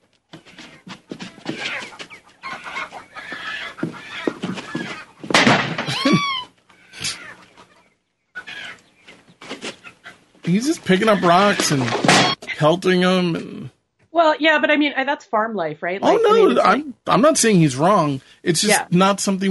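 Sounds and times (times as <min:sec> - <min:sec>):
agitated chickens clucking and squawking during a hawk attack: 0:00.4 - 0:13.3
chicken crying frantically: 0:00.5 - 0:08.9, 0:10.9 - 0:12.4
laughter: 0:05.9 - 0:06.4, 0:07.0 - 0:07.2, 0:10.5 - 0:13.7, 0:16.0 - 0:19.5
speech: 0:10.5 - 0:19.5.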